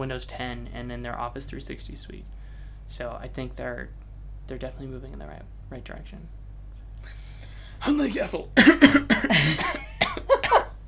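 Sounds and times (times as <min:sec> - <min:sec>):
speech: 0:00.0 - 0:06.4, 0:07.8 - 0:09.8
person coughing: 0:08.6 - 0:10.7.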